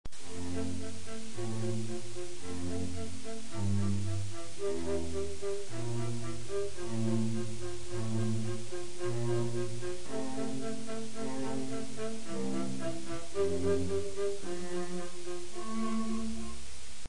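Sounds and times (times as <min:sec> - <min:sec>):
cello: 0:00.1 - 0:17.0
viola: 0:00.1 - 0:17.0.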